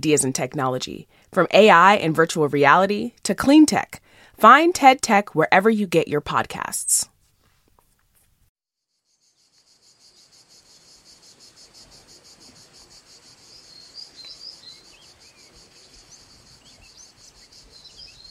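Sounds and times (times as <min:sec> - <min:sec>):
speech: 0:00.0 - 0:07.1
chorus of crickets chirping in a southern European native forest: 0:08.9 - 0:18.3
birds chirping and tweeting in a southern European native forest: 0:10.1 - 0:18.3.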